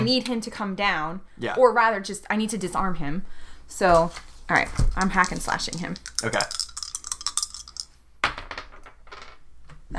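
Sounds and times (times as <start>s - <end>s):
speech: 0.1s - 6.6s
dice clattering across a hard table: 4.8s - 9.4s.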